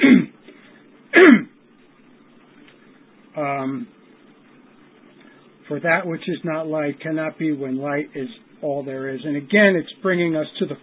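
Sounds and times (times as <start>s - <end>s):
rough voiced throat clearing: 0.0s - 0.4s, 1.2s - 1.5s
smoker coughing sharply: 0.0s - 0.4s, 1.2s - 1.5s
faint low hum: 0.0s - 10.8s
speech: 5.7s - 10.8s.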